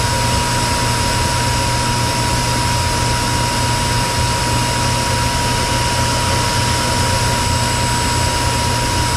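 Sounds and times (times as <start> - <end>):
F86 aircraft jet engine running: 0.0 - 9.1.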